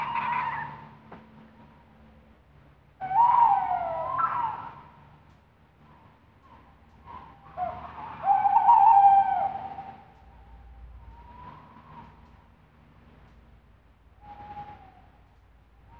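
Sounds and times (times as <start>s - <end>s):
tawny owl hooting at night: 0.0s - 0.9s, 3.0s - 4.9s, 7.1s - 11.4s.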